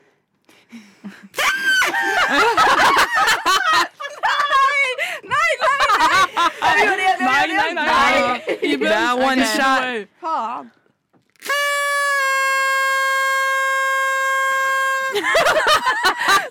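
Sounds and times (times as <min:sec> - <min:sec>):
laughter: 0:01.0 - 0:07.0, 0:08.1 - 0:09.0, 0:15.1 - 0:16.5
people talking: 0:03.7 - 0:10.7
person holding one long steady sung note: 0:11.4 - 0:15.2.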